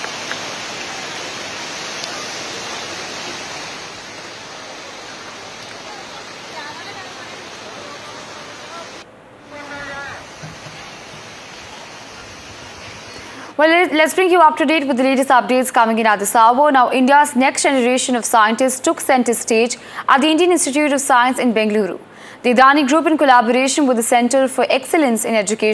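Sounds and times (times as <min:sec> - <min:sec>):
Kosi River floodwater rushing at Ramnagar in Nainital district: 0:00.0 - 0:14.4
faint voice-like sound: 0:05.8 - 0:10.3
speech: 0:13.6 - 0:25.7.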